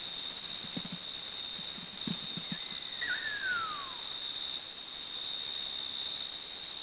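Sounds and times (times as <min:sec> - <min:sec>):
steady shrill insect chorus at Subic, Philippines: 0:00.0 - 0:06.8
great eared nightjar whistled call at Subic, Philippines: 0:02.5 - 0:04.6.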